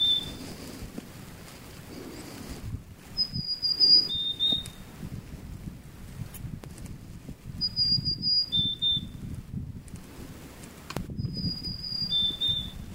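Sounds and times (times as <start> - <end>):
marsh tit double calls: 0.0 - 0.5, 3.2 - 4.8, 7.6 - 9.2, 11.2 - 12.8.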